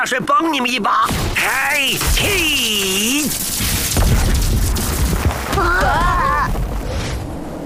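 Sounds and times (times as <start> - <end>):
speech: 0.0 - 4.2
rocks being smashed apart with heavy crashing blows: 1.1 - 6.9.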